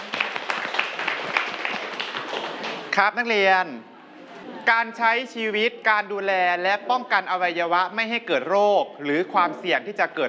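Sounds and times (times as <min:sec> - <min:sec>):
students clapping for a classmate: 0:00.0 - 0:03.0
speech: 0:03.0 - 0:03.9, 0:04.7 - 0:10.2.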